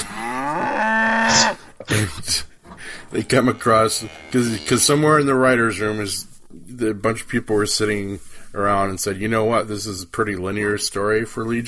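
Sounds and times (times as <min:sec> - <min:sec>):
cow mooing: 0:00.0 - 0:01.7, 0:03.3 - 0:05.3
speech: 0:03.1 - 0:11.6.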